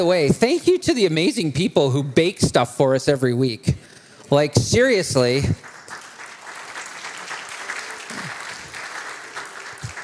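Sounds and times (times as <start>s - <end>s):
speech: 0.0s - 5.7s
audience applauding: 5.6s - 10.0s.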